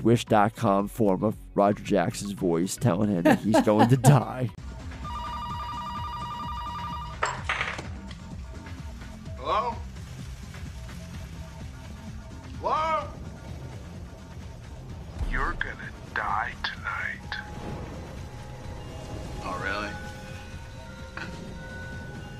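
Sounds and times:
speech: 0:00.0 - 0:04.6
laughter: 0:03.2 - 0:04.4
telephone ringing with a bright electronic tone: 0:05.0 - 0:07.5
low rumbling background: 0:10.0 - 0:22.3.

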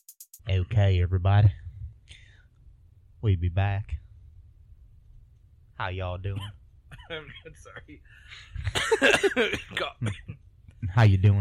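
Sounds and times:
speech: 0:00.5 - 0:01.6, 0:03.2 - 0:04.0, 0:05.8 - 0:11.3
harsh coughing: 0:06.4 - 0:07.6, 0:08.5 - 0:10.4.

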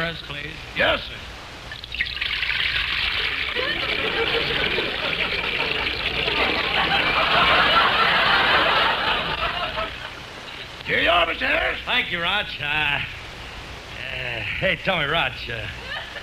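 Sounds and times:
speech: 0:00.1 - 0:01.4, 0:10.9 - 0:13.2, 0:14.2 - 0:15.8
eggnog gurgling as it is poured into a glass: 0:01.7 - 0:07.2
faint murmuring and chuckling: 0:03.4 - 0:10.3, 0:15.7 - 0:16.2.

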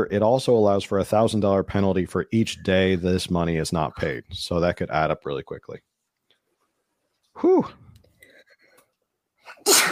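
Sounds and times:
speech: 0:00.0 - 0:05.9, 0:07.4 - 0:07.8
person sneezing: 0:09.5 - 0:09.9.

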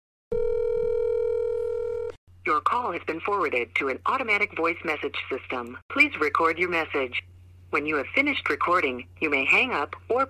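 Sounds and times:
phone ringing tone on an outgoing call: 0:00.3 - 0:02.2
speech: 0:02.5 - 0:10.2.

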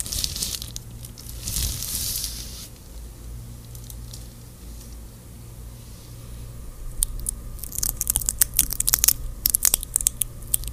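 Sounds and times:
crinkly snaps and rustles of stickers and gloves: 0:00.0 - 0:02.8, 0:07.0 - 0:10.7
long hissing peel of tape: 0:00.0 - 0:02.8, 0:07.0 - 0:10.7
steady low hum: 0:00.0 - 0:10.7.

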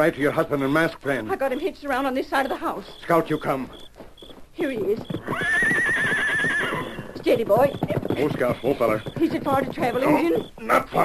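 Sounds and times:
speech: 0:00.0 - 0:05.8, 0:07.2 - 0:11.0
horse neighing with shaky wavering pitch: 0:04.8 - 0:11.0.

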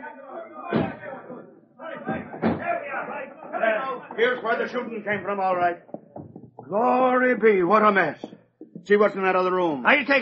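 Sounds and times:
voices: 0:00.0 - 0:10.2
door slamming shut with a heavy thud: 0:00.7 - 0:01.1, 0:02.0 - 0:03.1
speech: 0:04.2 - 0:05.9, 0:06.7 - 0:10.2.

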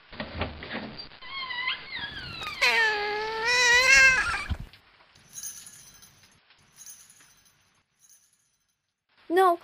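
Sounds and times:
cat meowing: 0:01.4 - 0:04.6
faint clinks: 0:05.2 - 0:09.0.

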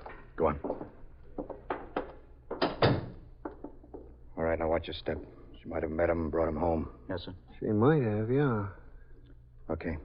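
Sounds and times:
speech: 0:00.4 - 0:00.8, 0:04.8 - 0:08.8, 0:09.7 - 0:10.0
door opening with dull thunks and knocks: 0:02.6 - 0:03.2.

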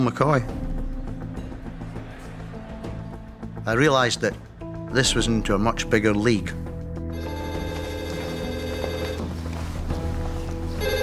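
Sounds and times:
speech: 0:00.0 - 0:00.7, 0:03.7 - 0:06.6
telephone ringing: 0:07.1 - 0:09.8, 0:10.7 - 0:11.0.

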